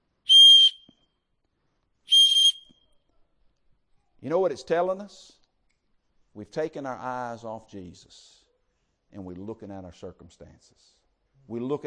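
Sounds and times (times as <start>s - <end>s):
shrill whistle blasts: 0.2s - 1.0s, 2.1s - 2.9s
speech: 4.2s - 5.4s, 6.4s - 8.4s, 9.1s - 11.8s.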